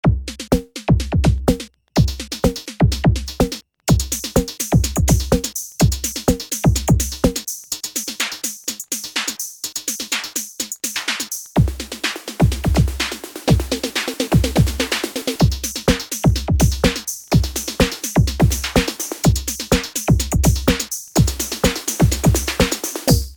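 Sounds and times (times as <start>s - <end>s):
analog drums on a microq: 0.0s - 23.3s.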